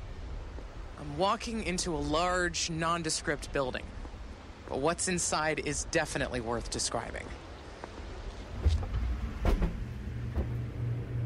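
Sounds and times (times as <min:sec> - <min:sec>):
speech: 0:01.0 - 0:04.0, 0:04.7 - 0:07.4
low mechanical hum of an environmental growth chamber: 0:07.5 - 0:11.2.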